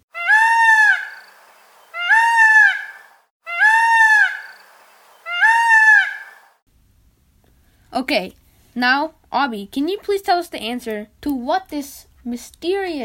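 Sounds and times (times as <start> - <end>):
peacock calling: 0.0 - 6.6
speech: 8.0 - 13.0.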